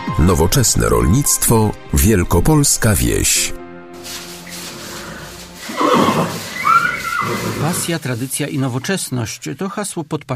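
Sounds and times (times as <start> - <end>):
speech: 0.2 - 4.2, 7.2 - 10.3
horse neighing: 4.3 - 8.3.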